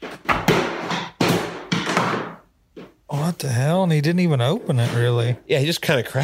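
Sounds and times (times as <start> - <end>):
heavy object tumbling down stairs: 0.0 - 2.9
speech: 3.4 - 6.2.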